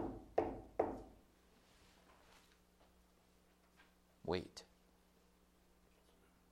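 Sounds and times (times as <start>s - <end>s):
firm knocks on a door: 0.0s - 1.2s
speech: 4.3s - 4.7s.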